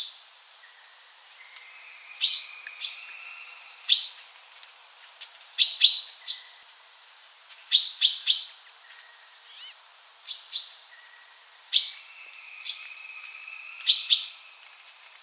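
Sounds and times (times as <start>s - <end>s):
soft hiss: 0.3s - 15.2s
common chaffinch calling with sharp high chipping notes: 9.4s - 9.8s.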